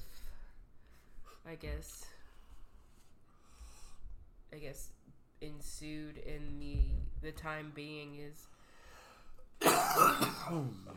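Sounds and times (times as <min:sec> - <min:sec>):
speech: 0:01.4 - 0:02.2, 0:04.5 - 0:08.6, 0:09.8 - 0:10.9
person coughing harshly: 0:09.6 - 0:10.9.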